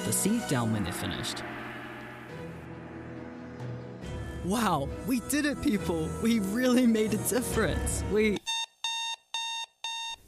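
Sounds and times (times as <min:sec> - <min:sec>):
speech: 0:00.1 - 0:01.6, 0:04.4 - 0:08.4
alarm clock beeping: 0:08.4 - 0:10.2.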